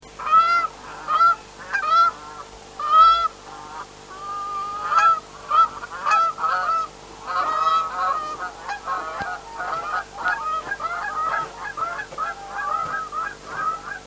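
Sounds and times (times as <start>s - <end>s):
Branta canadensis: 0.1s - 14.0s.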